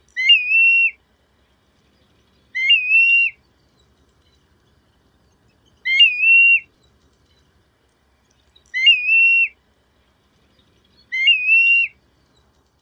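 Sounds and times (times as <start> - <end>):
pleeooee calls: 0.0 - 1.0, 2.5 - 3.4, 5.8 - 6.7, 8.6 - 9.6, 11.0 - 12.0.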